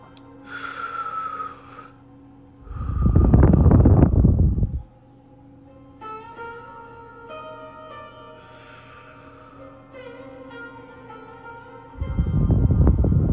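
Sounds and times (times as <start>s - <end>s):
faint steady hum: 0.0s - 6.0s, 8.0s - 13.3s
person breathing deeply in a guided relaxation exercise: 0.4s - 2.0s, 2.6s - 4.9s, 8.4s - 9.9s.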